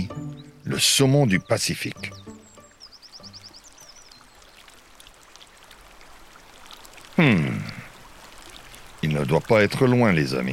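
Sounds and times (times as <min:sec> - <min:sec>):
bird chirps and trills: 0:00.0 - 0:05.0
river water flowing in the Vancouver area of British Columbia: 0:00.0 - 0:10.5
speech: 0:00.1 - 0:02.3, 0:09.2 - 0:10.5.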